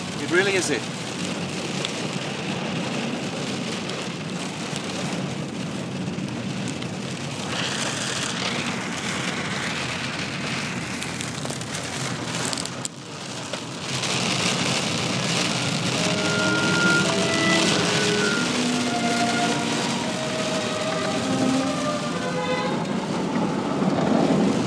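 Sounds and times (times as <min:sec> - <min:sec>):
heavy rain falling: 0:00.0 - 0:24.6
speech: 0:00.3 - 0:01.4.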